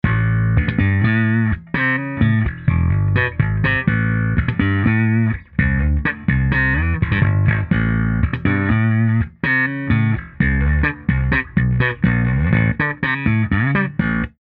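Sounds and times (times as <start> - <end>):
slap bass on a Fender Precision bass guitar: 0.0 - 14.4.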